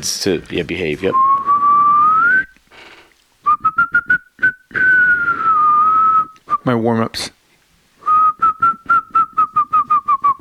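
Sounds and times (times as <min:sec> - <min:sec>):
speech: 0:00.0 - 0:01.3, 0:06.6 - 0:07.4
person whistling a simple melody: 0:01.1 - 0:02.6, 0:03.4 - 0:06.7, 0:08.0 - 0:10.4.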